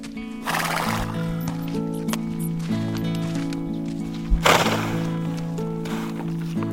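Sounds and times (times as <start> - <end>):
horse hooves stomping and clopping on the ground: 0.0 - 6.7
horse outside a tent neighing and whinnying: 0.4 - 1.3
sharp thuds: 4.3 - 5.2.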